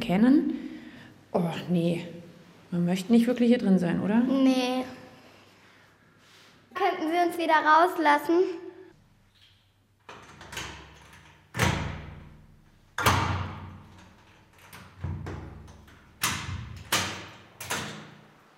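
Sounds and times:
speech: 0.1 - 0.6, 1.3 - 5.0, 7.1 - 8.6
heavy metal cell door being worked open with clanks and thuds: 10.1 - 12.3, 13.0 - 18.2.

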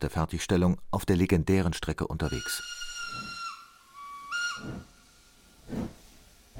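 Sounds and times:
speech: 0.0 - 2.8, 4.6 - 4.9
steam locomotive whistle blasts: 2.3 - 5.5
steam locomotive hissing steam: 2.6 - 6.5.

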